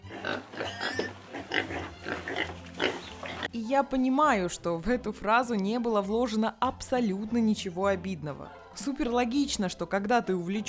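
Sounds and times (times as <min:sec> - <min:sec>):
pig oinking and grunting: 0:00.0 - 0:03.5
speech: 0:03.7 - 0:10.6.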